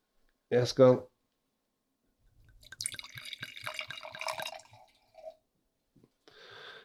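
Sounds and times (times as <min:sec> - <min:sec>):
speech: 0:00.5 - 0:01.1
wine pouring into a glass: 0:02.4 - 0:05.4.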